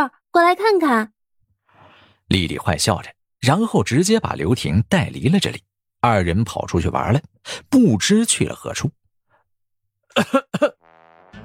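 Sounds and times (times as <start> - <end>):
speech: 0.0 - 1.2, 2.3 - 9.0, 10.1 - 10.8
person coughing awkwardly: 10.1 - 10.8.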